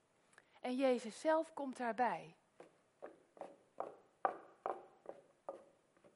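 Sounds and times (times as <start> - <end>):
speech: 0.6 - 2.4
footsteps in wooden clogs on a path: 2.6 - 6.1.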